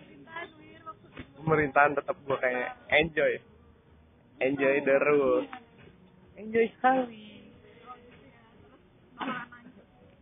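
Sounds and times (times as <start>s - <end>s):
speech: 1.5s - 3.5s, 4.4s - 5.6s, 6.4s - 7.3s
single short forceful cough: 9.2s - 9.5s.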